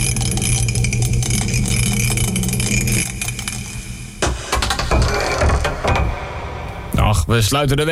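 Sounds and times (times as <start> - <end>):
dice rattling inside a mug: 0.0 - 3.4
steady low hum: 0.0 - 7.3
speech: 7.3 - 7.9.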